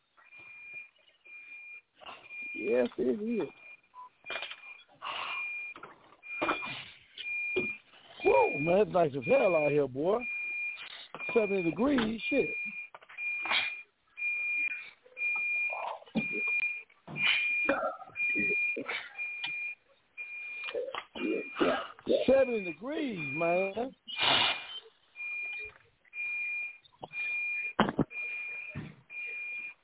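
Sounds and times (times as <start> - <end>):
broken room alarm beeping: 0.2 - 29.8
speech: 2.6 - 3.6, 8.6 - 10.3, 11.3 - 12.8.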